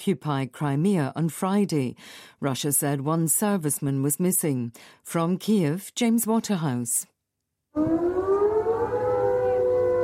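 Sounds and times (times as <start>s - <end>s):
speech: 0.0s - 7.1s, 7.7s - 8.3s
air raid siren wailing in Crimea: 7.8s - 10.0s.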